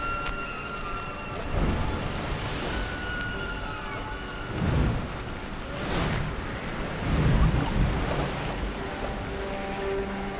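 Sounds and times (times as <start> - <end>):
rough sea surging and crashing in high waves: 0.8 - 10.3
wind at sea buffeting: 1.5 - 9.6.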